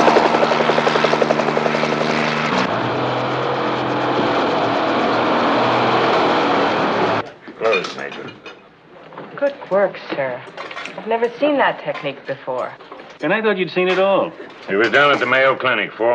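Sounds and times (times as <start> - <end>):
approaching helicopters rotor noise: 0.0 - 7.2
speech: 9.7 - 16.1.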